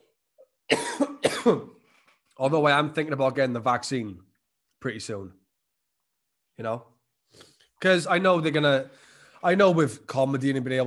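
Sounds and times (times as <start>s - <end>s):
harsh raspy hacking coughing fit: 0.7s - 1.8s
speech: 1.4s - 1.7s, 2.4s - 5.4s, 6.6s - 10.8s.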